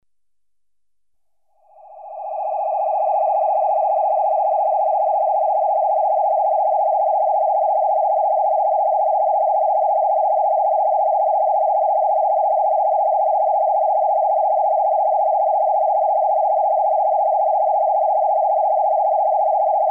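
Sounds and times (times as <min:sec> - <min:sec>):
electronically generated warble: 0:01.8 - 0:19.8.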